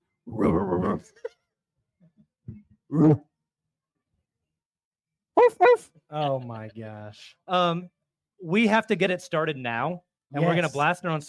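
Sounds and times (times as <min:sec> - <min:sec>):
person imitating a throaty dog bark: 0:00.3 - 0:01.2, 0:02.9 - 0:03.2
speech: 0:00.6 - 0:01.4, 0:02.9 - 0:03.3, 0:05.5 - 0:11.2
person grunting softly: 0:02.9 - 0:03.2.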